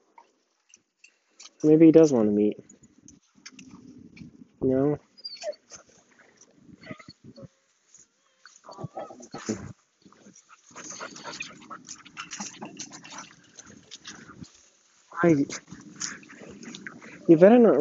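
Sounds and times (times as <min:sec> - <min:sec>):
rustling: 0:00.0 - 0:17.7
speech: 0:01.6 - 0:02.8, 0:04.6 - 0:05.1, 0:15.2 - 0:15.6, 0:17.3 - 0:17.7
dog whimpering and whining: 0:05.1 - 0:05.9, 0:06.8 - 0:07.5, 0:08.6 - 0:09.7, 0:10.8 - 0:12.9.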